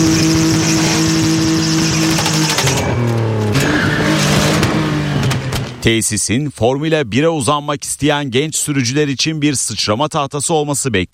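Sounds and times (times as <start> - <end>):
go-kart engines buzzing while drifting on a dusty dirt track in Mabushi, Abuja, Nigeria: 0.0 - 5.8
go-kart tyres scraping on a dusty dirt track: 0.0 - 5.9
speech: 5.8 - 11.1.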